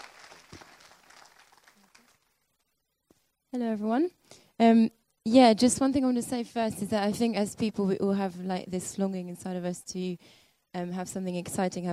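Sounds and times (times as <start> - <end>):
crowd applauding: 0.0 - 2.3
speech: 3.5 - 11.9.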